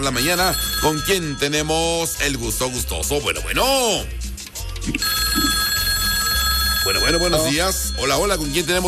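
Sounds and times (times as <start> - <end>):
telephone ringing for an incoming call with electronic trill: 0.0 - 2.2, 5.0 - 8.8
speech: 0.0 - 4.2, 6.8 - 8.8.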